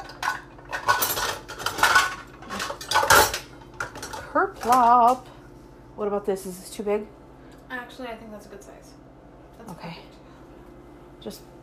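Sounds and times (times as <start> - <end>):
metal cutlery clinking: 0.0 - 4.9
ceramic dishes clattering: 0.0 - 5.2
speech: 4.4 - 5.3, 6.0 - 9.0, 9.6 - 10.2, 11.2 - 11.5.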